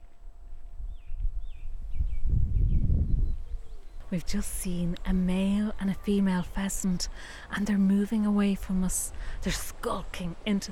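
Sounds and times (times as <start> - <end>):
birds singing in trees: 0.9 - 6.9
speech: 4.1 - 10.7.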